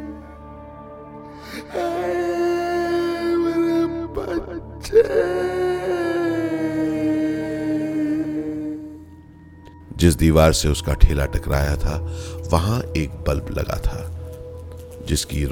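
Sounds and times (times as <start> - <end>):
person sobbing: 1.4 - 8.8
speech: 4.9 - 5.6, 10.0 - 14.1, 15.0 - 15.4.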